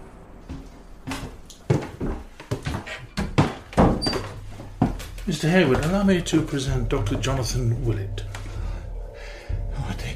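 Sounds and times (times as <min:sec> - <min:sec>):
footstep-like bumps of someone moving through a doorway: 0:00.4 - 0:09.1
door being handled and swung open: 0:02.8 - 0:08.8
speech: 0:05.3 - 0:08.3.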